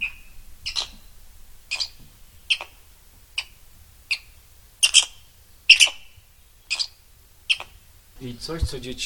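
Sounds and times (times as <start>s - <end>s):
squirrel call played back from an exhibit: 0.0s - 1.1s, 1.7s - 7.9s
speech: 8.2s - 9.0s.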